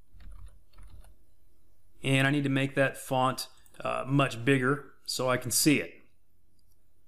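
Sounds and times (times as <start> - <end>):
typing on a computer keyboard: 0.2 - 1.1
speech: 2.0 - 6.0.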